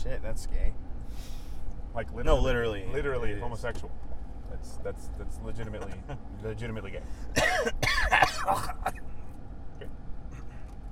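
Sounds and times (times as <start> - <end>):
speech: 0.3 - 1.3, 2.0 - 9.0
person coughing: 7.4 - 9.0.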